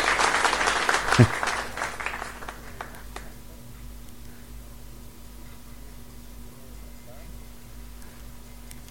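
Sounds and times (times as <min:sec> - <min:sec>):
audience applauding: 0:00.0 - 0:03.3.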